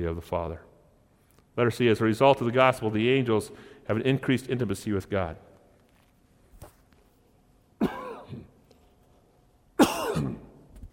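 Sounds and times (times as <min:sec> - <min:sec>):
speech: 0:00.0 - 0:00.7, 0:01.6 - 0:05.5
person coughing: 0:07.8 - 0:08.6, 0:09.8 - 0:10.6
throat clearing: 0:07.8 - 0:08.6, 0:09.8 - 0:10.6.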